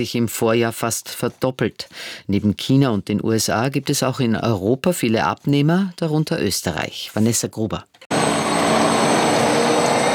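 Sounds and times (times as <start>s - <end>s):
speech: 0.0s - 8.1s
electric bus driving through city streets in Vienna: 8.1s - 10.1s
thin high tonal whines of an electric bus: 8.1s - 10.1s.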